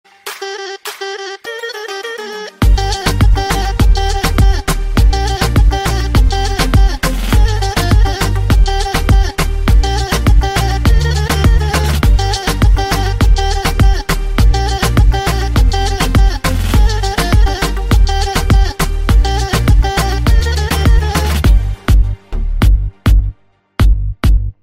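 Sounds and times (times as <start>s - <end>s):
Arabic remix ringtone: 0.1s - 24.5s.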